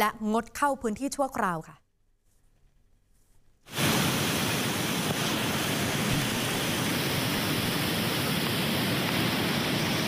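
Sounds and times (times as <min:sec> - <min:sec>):
speech: 0:00.0 - 0:01.8
flash flood torrent rushing over waterfall after heavy rain: 0:03.7 - 0:10.0.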